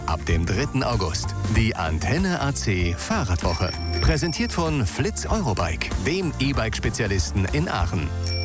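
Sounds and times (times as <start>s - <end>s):
speech: 0.1s - 8.3s
bright chime: 3.5s - 4.6s.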